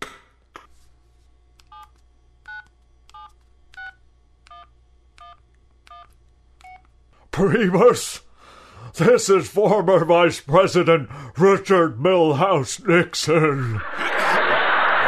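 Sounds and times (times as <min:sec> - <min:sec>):
touch-tone telephone being dialed: 0:02.5 - 0:06.8
speech: 0:07.4 - 0:08.3, 0:09.0 - 0:14.0
laughter: 0:13.2 - 0:15.0
low hum: 0:13.6 - 0:15.0.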